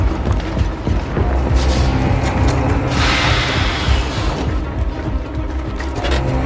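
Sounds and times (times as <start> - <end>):
heavy truck engine rumbling approaching a mine: 0.0 - 6.4
rushing hissing surge: 2.7 - 4.9.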